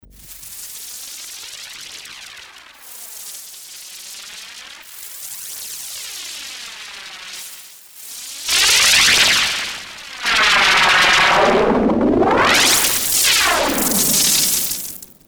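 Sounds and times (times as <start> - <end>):
Creamware Minimax synthesizer noise effect: 8.6 - 15.2.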